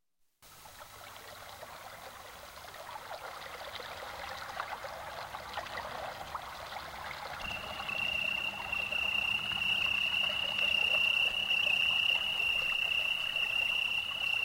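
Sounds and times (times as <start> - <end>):
soft outdoor noise: 0.3 - 14.4
chorus of frogs croaking by a pond: 7.4 - 14.4.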